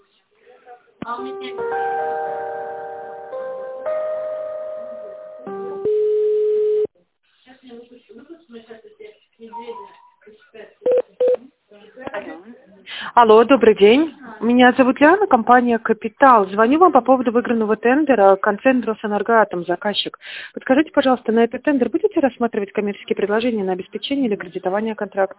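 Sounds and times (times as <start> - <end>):
speech: 1.1 - 1.9, 13.2 - 25.3
electronic telephone tones during a business call transfer: 5.9 - 6.9, 10.9 - 11.4.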